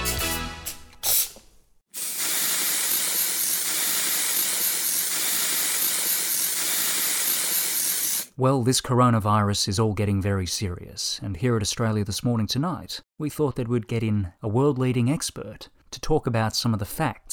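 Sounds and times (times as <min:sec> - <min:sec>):
aerosol spray can hissing: 0:02.0 - 0:08.3
speech: 0:08.4 - 0:17.3.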